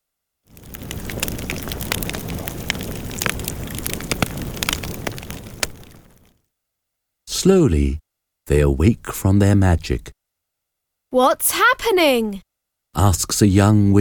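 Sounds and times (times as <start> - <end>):
fire crackling in a fireplace: 0.5 - 6.4
speech: 7.4 - 10.2, 11.1 - 13.9.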